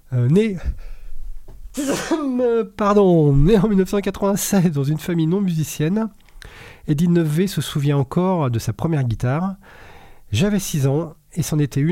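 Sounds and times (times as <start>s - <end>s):
speech: 0.1s - 0.9s, 1.8s - 11.9s
person sneezing: 1.8s - 2.4s.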